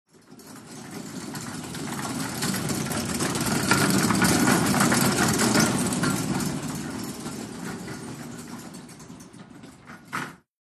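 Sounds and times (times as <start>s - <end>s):
gurney cart passing fast: 1.0s - 8.8s.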